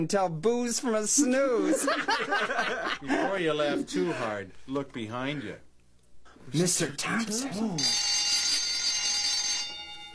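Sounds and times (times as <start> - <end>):
speech: 0.0 - 5.7, 6.4 - 8.2
laughter: 1.3 - 4.3
electric school bell ringing: 7.8 - 10.1.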